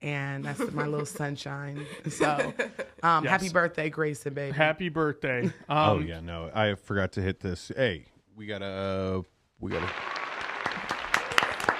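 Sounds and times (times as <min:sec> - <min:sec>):
speech: 0:00.0 - 0:10.2
laughter: 0:00.4 - 0:03.5, 0:05.4 - 0:06.2
applause sound effect from a sound effect board: 0:09.7 - 0:11.7.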